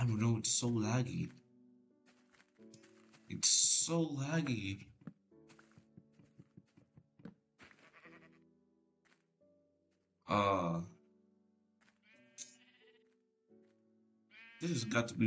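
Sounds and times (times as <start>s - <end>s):
speech: 0.2s - 1.4s, 3.3s - 4.9s, 10.3s - 11.0s, 14.6s - 15.2s
video game sheep bleating as the player tries to kill it: 7.6s - 8.5s, 11.9s - 13.2s, 14.3s - 15.2s.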